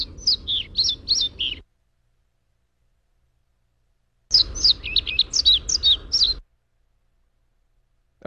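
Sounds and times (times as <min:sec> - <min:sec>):
unmated male pied flycatcher singing: 0:00.0 - 0:01.6, 0:04.3 - 0:06.4.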